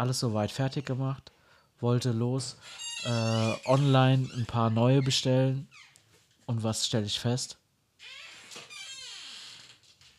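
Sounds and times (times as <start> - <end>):
speech: 0.0 - 5.9, 6.5 - 8.2
door creaking open with a long wavering squeak: 2.6 - 6.1, 8.0 - 10.1.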